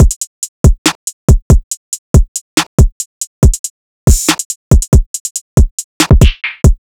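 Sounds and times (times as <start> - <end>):
hip hop drum loop at 140 BPM: 0.0 - 6.8.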